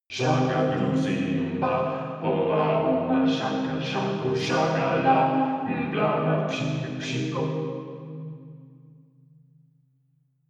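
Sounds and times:
vocoder vocals: 0.1 - 8.1.

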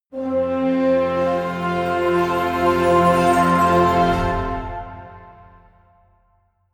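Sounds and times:
medieval positive orchestral jingle: 0.2 - 6.0.

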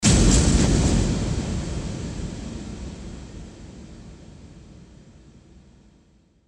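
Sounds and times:
impact: 0.0 - 5.1
noisy ambience: 0.0 - 5.9.

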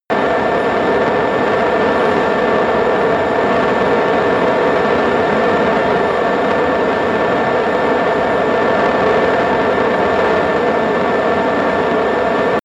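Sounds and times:
military jet fighter turbine running steady: 0.0 - 12.6.

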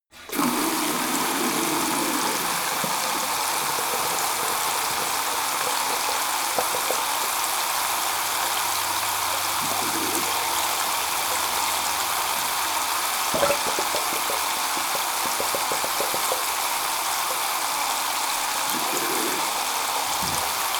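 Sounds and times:
garden tap water flowing hard: 0.0 - 20.7.

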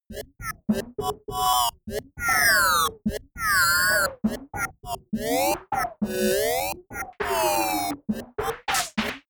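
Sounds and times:
crazy noise percussion sequence: 0.7 - 9.2
synth lead: 2.2 - 8.6.

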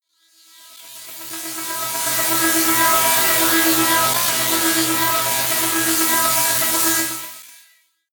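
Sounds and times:
long industrial riser: 1.3 - 7.4.

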